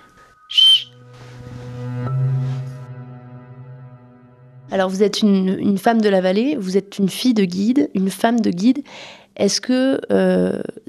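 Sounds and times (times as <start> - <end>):
shrill blast from a small whistle on a Swiss army knife: 0.4 - 1.1
speech: 4.7 - 10.8.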